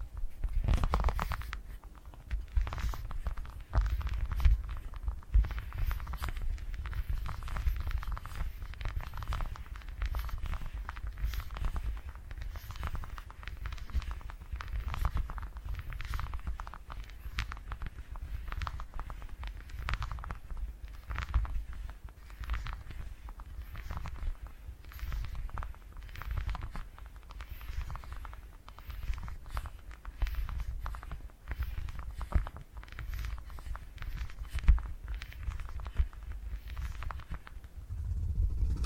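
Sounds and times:
soft crackly taps: 0:00.0 - 0:38.8
purring rumble: 0:37.8 - 0:38.8.

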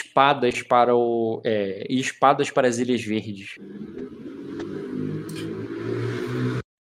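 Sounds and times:
speech: 0:00.2 - 0:04.0
car passing by outside: 0:03.6 - 0:06.6.

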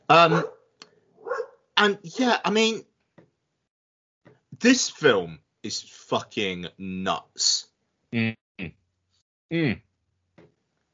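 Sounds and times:
speech: 0:00.1 - 0:00.6, 0:01.8 - 0:02.9, 0:04.6 - 0:08.8, 0:09.5 - 0:09.9
dog barking: 0:00.2 - 0:01.7.

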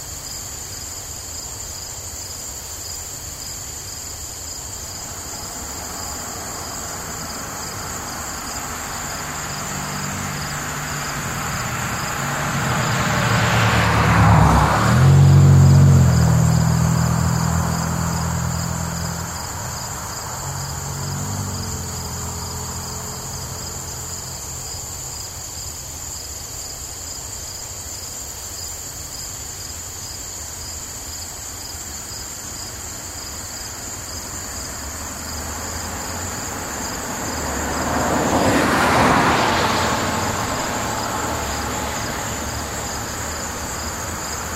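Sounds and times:
insects chirping in the grass: 0:00.0 - 0:44.5
car passing on a country road: 0:03.2 - 0:27.5, 0:31.4 - 0:44.5
quieter vehicle passing: 0:04.6 - 0:26.1, 0:32.7 - 0:44.5.

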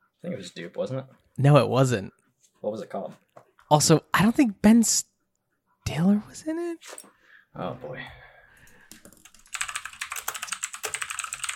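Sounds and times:
speech: 0:00.2 - 0:05.1, 0:05.9 - 0:08.2
rapid typing on a computer keyboard: 0:08.7 - 0:11.5.

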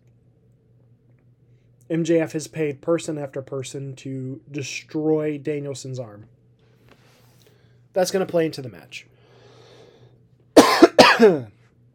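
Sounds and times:
speech: 0:01.9 - 0:06.4, 0:08.0 - 0:09.2, 0:11.2 - 0:11.6
person coughing sharply: 0:10.6 - 0:11.5.

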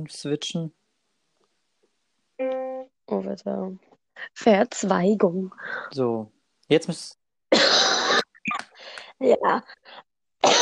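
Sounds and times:
speech: 0:00.0 - 0:00.8, 0:02.4 - 0:08.0, 0:09.2 - 0:10.6
harsh loud cough: 0:07.5 - 0:08.7, 0:10.4 - 0:10.6.

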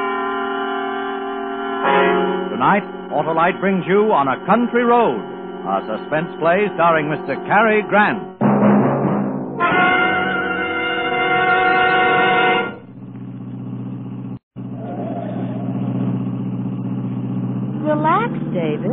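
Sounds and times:
car engine revving and idling in traffic: 0:00.0 - 0:08.5, 0:09.6 - 0:18.9
speech: 0:02.6 - 0:08.4.

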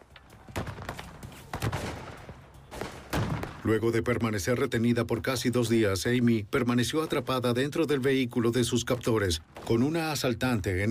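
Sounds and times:
gunshots in an exchange of gunfire: 0:00.5 - 0:03.8
speech: 0:03.7 - 0:10.8.

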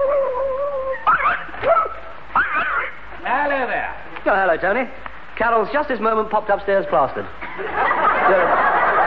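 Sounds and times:
dog whining high and thin: 0:00.0 - 0:03.0
dog yipping: 0:00.9 - 0:02.8
speech: 0:04.2 - 0:08.6
laughter: 0:07.4 - 0:09.0.

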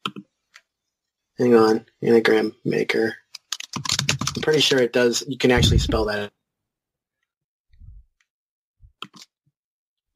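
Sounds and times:
speech: 0:01.4 - 0:03.2, 0:03.8 - 0:06.4
soft keyboard taps and clicks: 0:03.4 - 0:04.8.

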